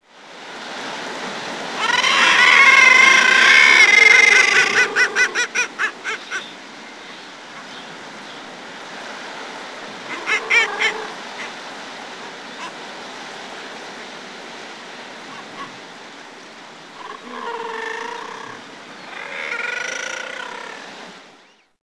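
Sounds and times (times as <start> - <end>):
common murre calling: 1.8 - 6.6, 9.9 - 11.7, 15.2 - 15.8, 16.9 - 21.1.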